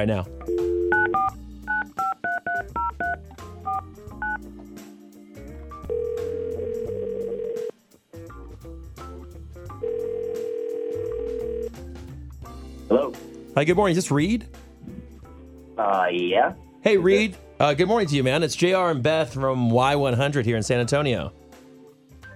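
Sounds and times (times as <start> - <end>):
speech: 0.0 - 0.4, 13.6 - 14.6, 15.8 - 21.4
long steady telephone ringback tones: 0.5 - 4.4, 5.9 - 7.7, 9.8 - 11.7.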